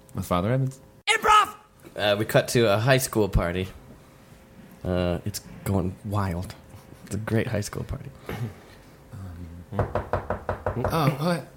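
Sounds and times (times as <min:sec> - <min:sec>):
speech: 0:00.2 - 0:00.9, 0:02.0 - 0:03.8, 0:04.8 - 0:08.6, 0:09.7 - 0:10.0, 0:10.8 - 0:11.5
firm knocking on a door: 0:09.8 - 0:11.0.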